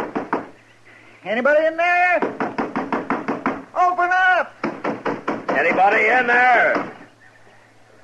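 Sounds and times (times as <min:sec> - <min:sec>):
speech: 0:01.2 - 0:02.4, 0:05.6 - 0:06.9
firm knocks on a house door: 0:02.2 - 0:03.6, 0:04.6 - 0:06.0.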